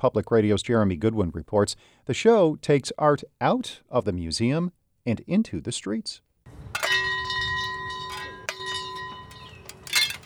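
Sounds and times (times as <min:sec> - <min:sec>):
speech: 0:00.0 - 0:06.2
long silver metal wind chimes ringing outdoors on a hill: 0:06.8 - 0:10.2.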